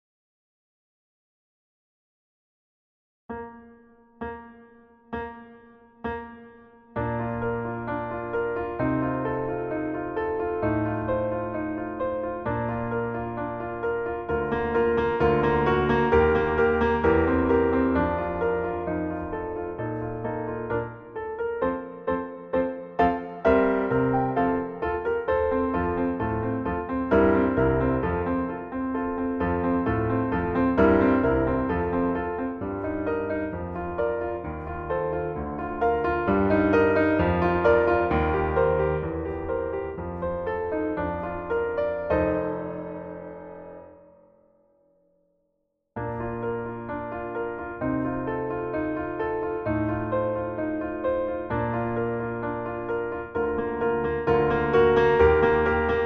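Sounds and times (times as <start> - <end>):
playback piano playing: 3.3 - 44.4, 46.0 - 56.0.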